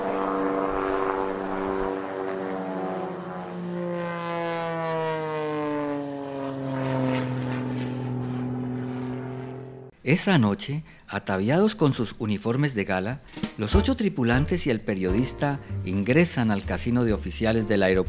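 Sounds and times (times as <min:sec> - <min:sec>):
propeller airplane engine droning while searching for the runway: 0:00.0 - 0:09.9
speech: 0:10.0 - 0:18.0.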